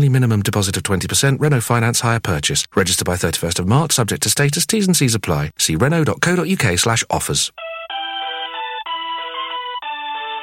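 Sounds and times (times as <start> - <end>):
speech: 0.0 - 7.7
tinny synthesized telephone hold music melody: 7.6 - 10.4.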